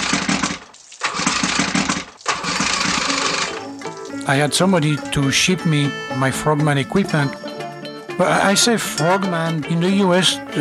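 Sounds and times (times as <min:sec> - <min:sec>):
motorboat engine cranking and starting: 0:00.0 - 0:04.3
speech: 0:04.3 - 0:07.4, 0:08.2 - 0:10.5.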